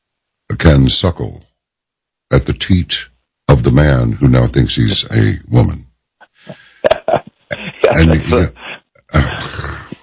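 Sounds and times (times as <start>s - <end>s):
speech: 0.5s - 1.5s, 2.3s - 5.8s, 7.9s - 9.3s
person coughing while laughing: 6.5s - 8.5s
person laughing: 6.5s - 10.0s.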